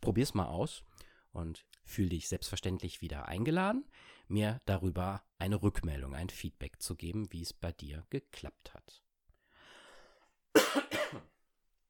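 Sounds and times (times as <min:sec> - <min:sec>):
speech: 0:00.1 - 0:09.0, 0:10.7 - 0:11.3
soft inhale: 0:03.9 - 0:04.3, 0:09.4 - 0:10.4
person coughing: 0:10.5 - 0:11.4.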